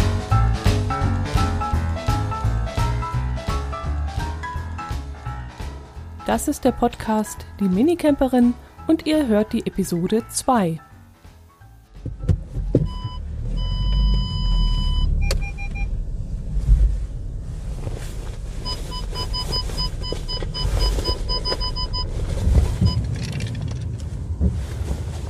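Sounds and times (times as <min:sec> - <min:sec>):
road and engine rumble inside a moving Volkswagen Golf 6: 0:00.0 - 0:25.2
speech: 0:06.3 - 0:10.9
high electronic beeping tones: 0:12.9 - 0:15.9, 0:18.7 - 0:22.1.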